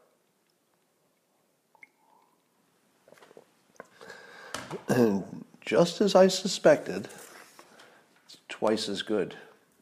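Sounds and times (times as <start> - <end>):
mouth clicks: 1.7 - 2.5
sipping a drink: 1.7 - 5.0
speech: 4.8 - 7.2, 8.6 - 9.5.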